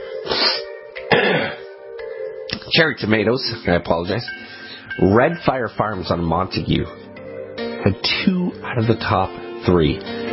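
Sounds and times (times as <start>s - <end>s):
harsh throaty coughing: 0.3s - 1.7s
speech: 2.7s - 7.0s, 7.8s - 10.2s.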